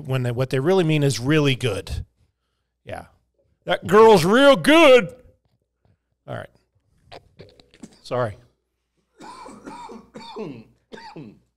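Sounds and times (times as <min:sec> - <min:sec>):
speech: 0:00.0 - 0:02.1, 0:02.8 - 0:05.2, 0:06.3 - 0:07.5, 0:08.1 - 0:08.4, 0:09.2 - 0:11.4
person clearing throat: 0:09.2 - 0:11.5
person coughing: 0:09.2 - 0:11.5.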